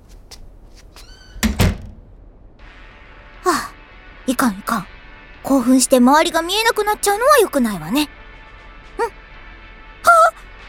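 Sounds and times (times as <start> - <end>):
brief high meow-like squeak: 1.0 - 1.5
door swinging shut with solid thumps: 1.3 - 2.2
speech: 4.4 - 8.1.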